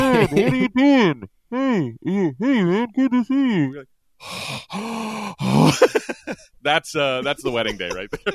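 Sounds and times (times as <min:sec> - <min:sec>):
laughter: 0:00.0 - 0:01.2, 0:05.6 - 0:06.5, 0:07.2 - 0:08.3
speech: 0:00.2 - 0:08.3
voice imitating heavy breathing and panting: 0:01.5 - 0:05.9.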